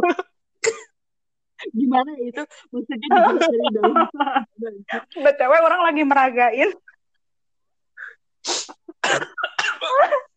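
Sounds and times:
speech: 0:01.9 - 0:06.8
laughter: 0:03.0 - 0:04.5
person coughing: 0:09.0 - 0:10.3.

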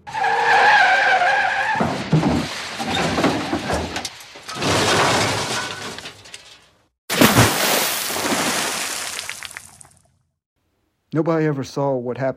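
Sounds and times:
car tires squealing in a skid: 0:00.0 - 0:05.0
scraping and rumbling: 0:00.1 - 0:06.9
car crash: 0:00.1 - 0:07.6
debris clattering: 0:01.0 - 0:10.0
glass shattering: 0:01.6 - 0:09.9
speech: 0:11.2 - 0:12.3.

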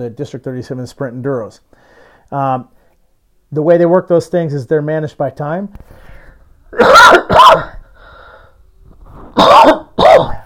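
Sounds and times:
speech: 0:00.0 - 0:02.8, 0:03.5 - 0:06.0, 0:06.7 - 0:07.8
faint breathing: 0:01.7 - 0:03.1, 0:05.8 - 0:06.6, 0:07.8 - 0:09.4
person coughing harshly: 0:06.7 - 0:07.9, 0:09.3 - 0:10.4.

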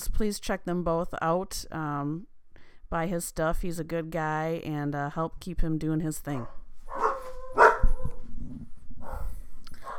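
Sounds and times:
speech: 0:00.2 - 0:02.3, 0:02.9 - 0:06.6
dog barking: 0:06.4 - 0:08.2.

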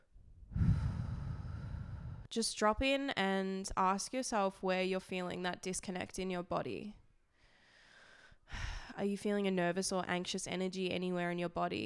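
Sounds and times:
deep breath in: 0:00.5 - 0:02.3, 0:07.4 - 0:09.0
speech: 0:02.3 - 0:07.0, 0:08.5 - 0:11.8.

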